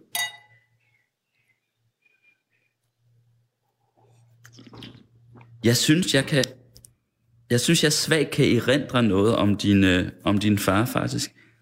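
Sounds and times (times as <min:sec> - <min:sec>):
glasses clinking in a toast: 0:00.0 - 0:00.7
clatter of glassware: 0:00.1 - 0:00.6
speech: 0:05.6 - 0:06.6, 0:07.5 - 0:11.4.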